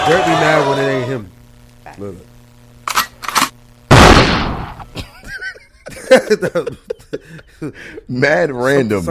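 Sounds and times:
speech: 0.1 - 1.4, 2.0 - 2.3, 6.1 - 9.0
gunshot sound effect: 3.9 - 4.8
laughter: 5.0 - 8.1.

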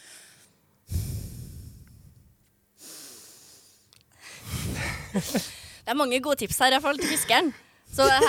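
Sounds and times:
slow deliberate breathing through the nose: 0.0 - 2.2, 2.8 - 5.8
speech: 5.2 - 8.2
laughter: 6.9 - 8.2.

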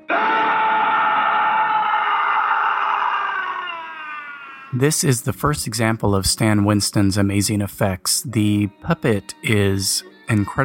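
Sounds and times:
agonizing scream in a film scene at an accident site: 0.0 - 4.8
speech: 4.7 - 10.6.

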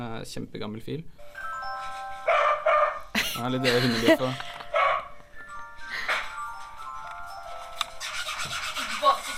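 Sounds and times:
speech: 0.0 - 1.5, 3.4 - 4.6
faint noise: 0.0 - 8.0
dog barking: 2.3 - 3.0, 4.8 - 5.1.

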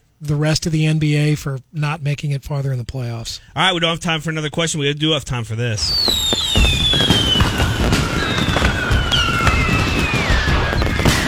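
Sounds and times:
speech: 0.2 - 7.1
fireworks crackling and popping: 5.8 - 11.2
sharp firework bangs: 5.8 - 11.2
whistling rockets: 5.8 - 11.2.

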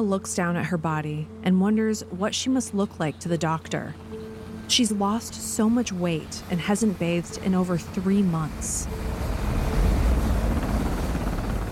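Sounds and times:
speech: 0.0 - 4.1, 4.7 - 9.3
helicopter heavy rotor roar while landing: 4.4 - 11.7.

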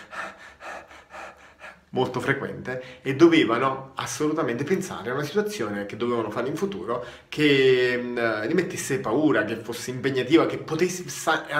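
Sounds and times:
rapid breathing: 0.0 - 3.1
speech: 1.9 - 11.5.

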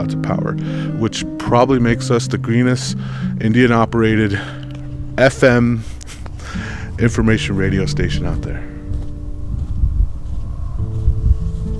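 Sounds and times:
speech: 0.0 - 4.6, 5.2 - 8.7
strong wind on an exposed hilltop buffeting the microphone: 4.8 - 11.7.

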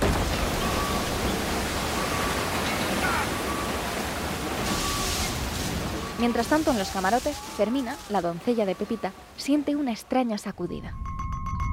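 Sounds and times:
water pouring into a ship's hull torn open by an iceberg: 0.0 - 6.8
speech: 6.2 - 11.1.

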